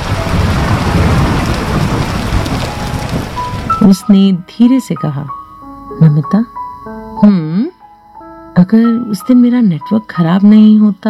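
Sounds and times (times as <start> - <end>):
heavy rain: 0.0 - 4.1
low thunder rumbling: 0.0 - 5.3
speech: 3.9 - 5.4, 6.0 - 6.6, 7.2 - 7.8, 8.6 - 11.0.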